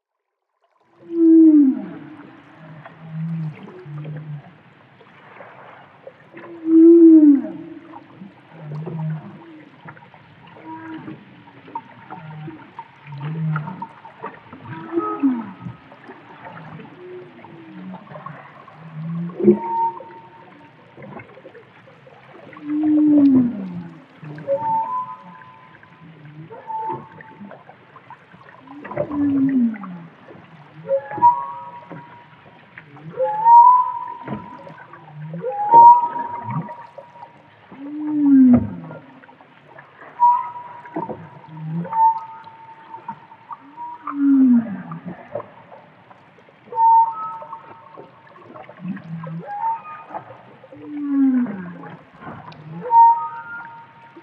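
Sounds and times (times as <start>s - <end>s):
humpback whales: 1.0s - 4.6s, 5.2s - 21.4s, 22.5s - 27.7s, 28.7s - 39.2s, 40.1s - 45.8s, 46.7s - 54.0s.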